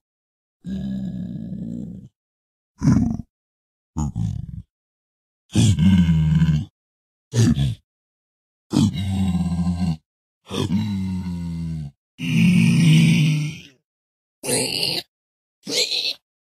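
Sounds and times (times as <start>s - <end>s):
pigman creature sound: 2.8s - 3.3s, 4.0s - 4.7s, 5.5s - 6.7s, 7.4s - 7.8s, 8.7s - 13.8s, 14.4s - 15.1s, 15.7s - 16.2s.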